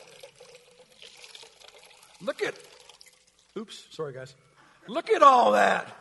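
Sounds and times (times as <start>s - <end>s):
water trickling out of a soaked sponge: 0.0s - 3.9s
speech: 2.2s - 2.8s, 3.6s - 5.9s.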